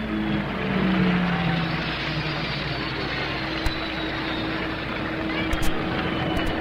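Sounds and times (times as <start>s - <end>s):
turbine race car engine roaring at speed: 0.0s - 6.6s
sharp clicks: 3.6s - 3.8s, 5.5s - 6.6s.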